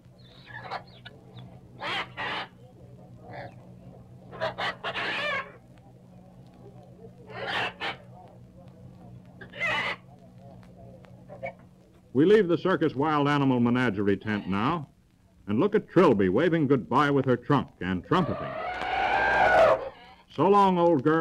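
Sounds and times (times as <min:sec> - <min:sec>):
steady low hum: 0:00.0 - 0:21.1
South American parrots squawking in a cage: 0:00.2 - 0:01.1, 0:01.8 - 0:02.6, 0:04.3 - 0:05.6, 0:07.3 - 0:08.1, 0:09.4 - 0:10.0, 0:18.2 - 0:20.0
speech: 0:12.2 - 0:14.9, 0:15.5 - 0:18.6, 0:20.4 - 0:21.1.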